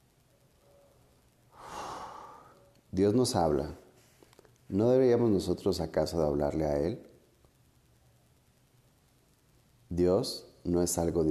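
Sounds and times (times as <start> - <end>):
deep slow breath in during a guided prayer exercise: 1.5 - 2.7
speech: 2.9 - 3.8, 4.7 - 7.1, 9.9 - 11.2.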